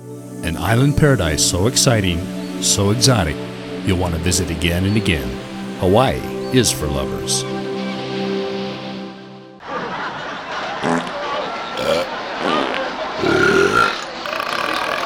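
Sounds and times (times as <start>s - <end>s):
speech: 0.6s - 7.7s
laughter: 9.6s - 15.0s
grunting bursts: 11.8s - 12.1s, 13.2s - 15.0s
long loud droning belch: 11.8s - 12.1s, 13.2s - 15.0s.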